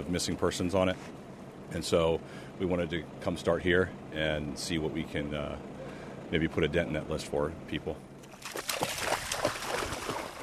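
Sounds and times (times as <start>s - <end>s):
speech: 0.1s - 8.1s
dog wading and splashing in floodwater: 8.2s - 10.4s.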